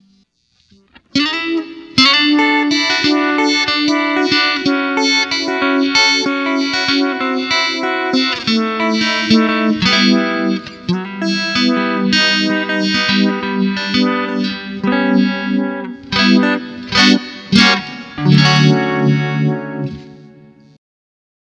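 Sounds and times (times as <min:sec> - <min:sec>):
clean electric guitar with Uni-V effect on a multi-effects processor: 0:00.0 - 0:20.8.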